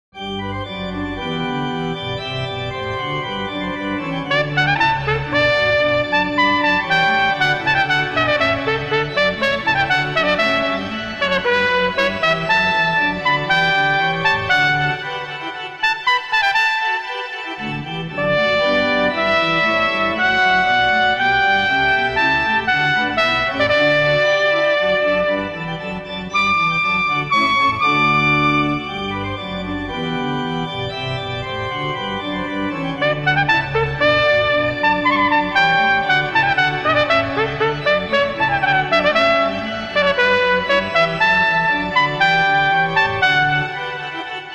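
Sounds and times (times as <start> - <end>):
horn playing an allegro sonata: 0.2 - 30.8, 31.6 - 44.5.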